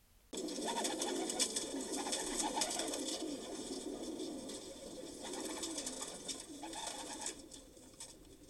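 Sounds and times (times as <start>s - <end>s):
flock of pigeons cooing: 0.4s - 8.4s.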